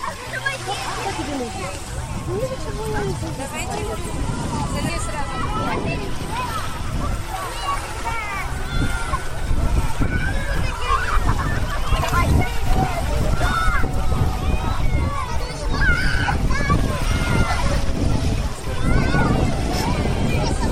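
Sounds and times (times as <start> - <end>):
children splashing in a calm sea: 0.0 - 20.6
din of many voices on a busy beach: 0.0 - 20.6
wind noise on a beach: 0.8 - 20.6
children shouting while wading and bathing in the sea: 4.2 - 20.6.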